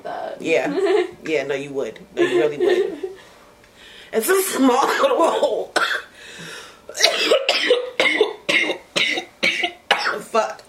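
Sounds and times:
speech: 0.4s - 3.0s, 4.1s - 5.6s
laughter: 0.6s - 1.2s, 2.2s - 3.2s
raspy breath: 3.2s - 4.2s, 6.1s - 6.9s
harsh coughing after smoking a blunt: 4.5s - 6.1s, 6.9s - 10.2s.

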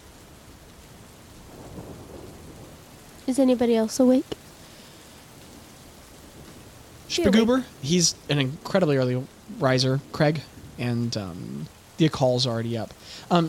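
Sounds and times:
steady gentle rain: 0.0s - 13.4s
faint rumbles: 3.1s - 13.4s
speech: 3.3s - 4.4s, 7.2s - 13.4s
person speaking in a quiet voice: 7.1s - 13.4s.

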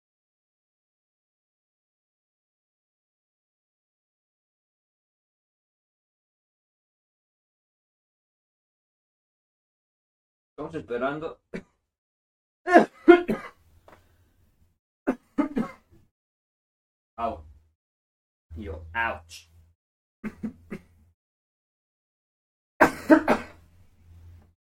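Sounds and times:
speech: 10.6s - 11.7s, 17.2s - 17.4s, 18.6s - 19.5s
person coughing harshly in a coughing fit: 12.7s - 13.6s, 15.1s - 15.9s, 20.2s - 20.9s, 22.8s - 23.6s.

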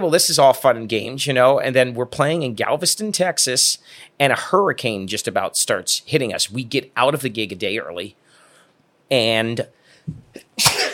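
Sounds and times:
speech: 0.0s - 8.2s, 9.1s - 10.9s
person sneezing loudly: 10.4s - 10.9s.

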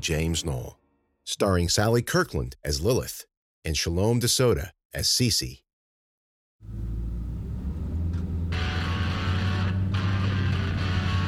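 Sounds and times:
speech: 0.0s - 5.6s
broadband road noise: 6.6s - 11.2s
old Honda CR-V engine rumbling while driving through streets: 6.6s - 11.2s.

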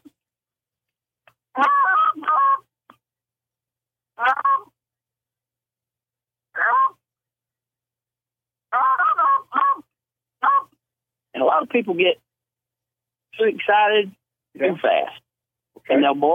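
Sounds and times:
goose hunter imitating Canada goose calls with voice: 1.6s - 2.7s, 4.2s - 4.7s, 8.8s - 10.8s
speech: 11.7s - 12.3s, 13.4s - 15.2s, 15.9s - 16.3s.

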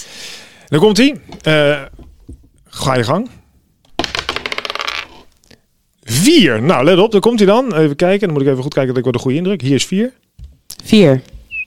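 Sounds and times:
speech: 0.7s - 2.1s, 2.8s - 3.4s, 6.3s - 10.2s, 10.8s - 11.3s
die thrown in a game clattering across a hard surface: 3.9s - 5.3s.

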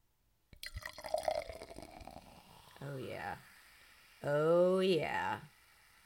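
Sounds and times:
champagne being poured into a glass: 0.6s - 4.2s
speech: 2.8s - 3.5s, 4.2s - 5.5s.

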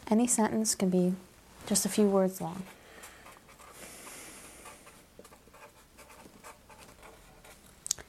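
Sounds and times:
speech: 0.1s - 2.8s
scratching of someone writing a sentence on a board: 4.6s - 7.6s.

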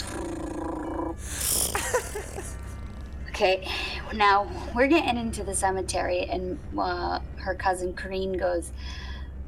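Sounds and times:
voice imitating a motorcycle like a card in bicycle spokes: 0.0s - 2.6s
breathy hiss: 1.2s - 2.5s
laughter: 1.8s - 2.6s
speech: 3.4s - 8.8s.

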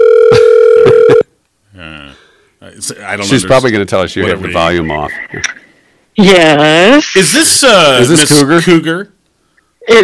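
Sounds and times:
telephone dial tone of an outgoing call: 0.0s - 1.2s
speech: 2.8s - 5.5s, 6.2s - 9.1s, 9.8s - 10.0s.

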